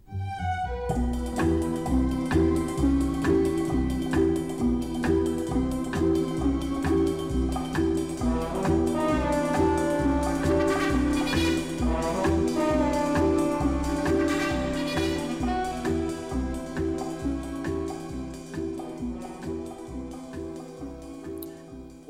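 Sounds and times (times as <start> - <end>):
jazzy orchestral arrangement in spy film theme style: 0.0 - 22.0.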